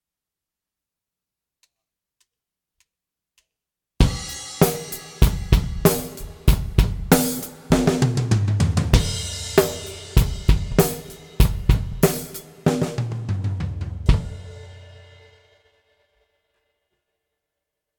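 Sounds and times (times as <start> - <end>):
drums: 4.0 - 15.7.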